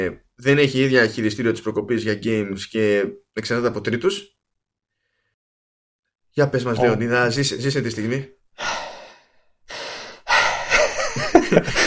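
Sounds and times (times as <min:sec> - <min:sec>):
speech: 0:00.0 - 0:04.4, 0:06.4 - 0:08.8, 0:11.5 - 0:11.8
deep breaths with shaky voiced edge: 0:04.9 - 0:05.4, 0:08.6 - 0:10.8.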